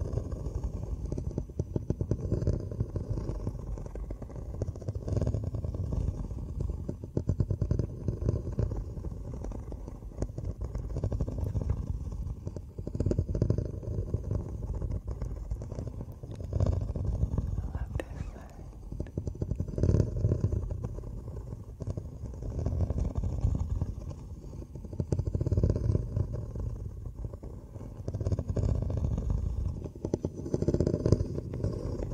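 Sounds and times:
muffled scratching on headphones or ear muffs: 0:00.0 - 0:32.1.

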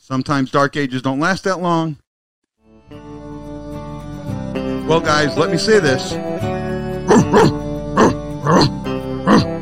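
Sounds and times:
speech: 0:00.1 - 0:02.0, 0:04.9 - 0:06.5, 0:07.3 - 0:09.4
dog barking in short sharp yaps: 0:07.1 - 0:08.7.

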